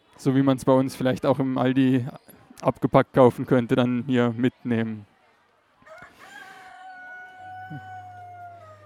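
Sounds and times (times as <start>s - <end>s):
speech: 0.2s - 5.1s
chickens in cages at a market: 5.8s - 8.8s
rooster crowing at a market: 5.8s - 8.8s.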